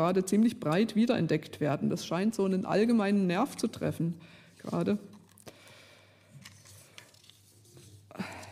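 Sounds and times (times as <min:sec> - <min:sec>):
speech: 0:00.0 - 0:05.2
rustling and shuffling of paper while searching for documents: 0:06.3 - 0:08.5.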